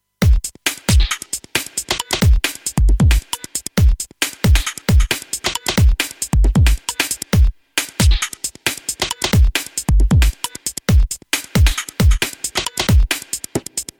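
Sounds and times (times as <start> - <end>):
beat with EQ: 0.2 - 13.9.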